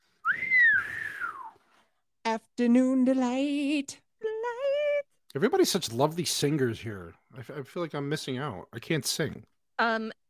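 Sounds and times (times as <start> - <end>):
slide whistle: 0.2 - 1.6
speech: 2.3 - 4.0, 5.3 - 10.2.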